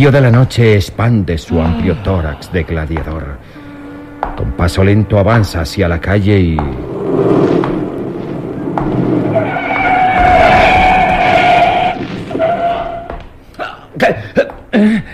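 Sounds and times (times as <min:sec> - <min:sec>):
speech: 0:00.0 - 0:03.6, 0:04.3 - 0:07.7, 0:14.0 - 0:15.1
car tires screeching in a long skid: 0:03.5 - 0:13.2.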